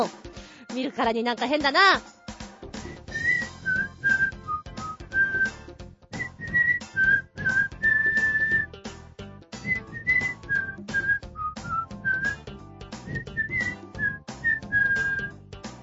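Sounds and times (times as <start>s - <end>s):
speech: 0.0s - 2.2s
steady rhythmic accompaniment with percussive beats: 0.0s - 15.8s
whistled melody from a video introducing a folding camper: 2.8s - 8.8s, 9.6s - 15.4s.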